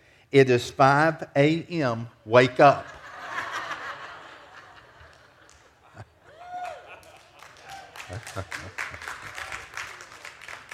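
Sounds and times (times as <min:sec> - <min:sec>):
speech: 0:00.3 - 0:03.0, 0:08.4 - 0:08.6
crowd of women laughing and chuckling: 0:02.9 - 0:09.4
crowd of women clapping: 0:04.5 - 0:10.7.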